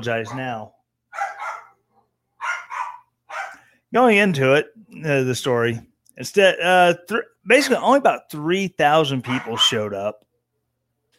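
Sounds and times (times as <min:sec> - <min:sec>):
speech: 0:00.0 - 0:00.8, 0:03.9 - 0:10.2
dogs barking sharply: 0:00.0 - 0:03.7, 0:09.2 - 0:10.0.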